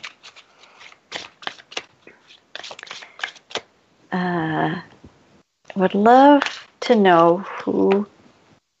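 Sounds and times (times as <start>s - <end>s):
card deck being shuffled quickly: 0.0s - 3.7s, 5.7s - 8.1s
speech: 4.1s - 4.9s, 5.8s - 8.1s.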